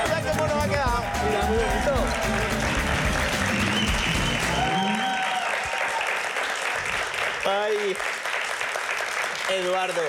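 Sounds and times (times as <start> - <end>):
bright whistle or cheer: 0.0 - 6.0
crowd applauding: 0.0 - 10.0
speech: 9.5 - 10.0.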